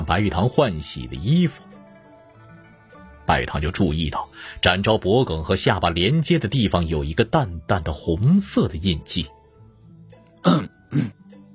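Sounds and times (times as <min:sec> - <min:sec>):
speech: 0:00.1 - 0:01.8, 0:03.3 - 0:09.4, 0:10.4 - 0:11.2
man coughing or clearing his throat: 0:10.5 - 0:11.2.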